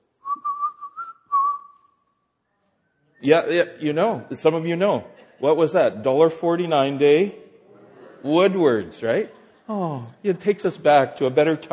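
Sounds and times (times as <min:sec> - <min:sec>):
person whistling a short tune: 0:00.2 - 0:02.1
speech: 0:03.2 - 0:07.4, 0:08.2 - 0:11.7.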